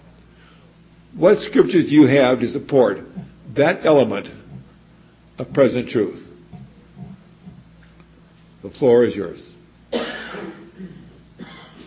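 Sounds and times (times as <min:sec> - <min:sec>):
speech: 0:01.1 - 0:04.4, 0:05.4 - 0:06.2, 0:08.6 - 0:10.9
person coughing: 0:09.9 - 0:11.8.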